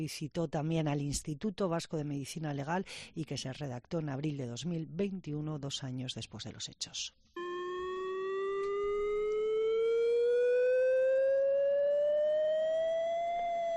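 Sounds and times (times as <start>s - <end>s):
speech: 0.0s - 7.3s
chemical emergency drill warning siren wailing: 7.4s - 13.7s.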